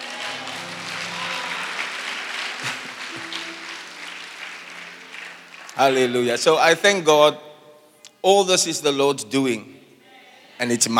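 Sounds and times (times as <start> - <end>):
crowd clapping: 0.0 - 7.0
speech: 5.8 - 7.5, 8.2 - 9.7, 10.6 - 10.9.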